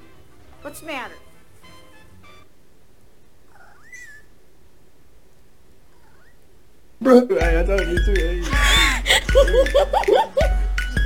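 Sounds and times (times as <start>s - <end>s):
steady hiss: 0.0s - 11.0s
speech: 0.6s - 1.3s, 7.0s - 8.6s, 9.3s - 10.5s
cat meowing: 3.5s - 4.4s, 5.9s - 6.4s
laughter: 8.4s - 10.6s.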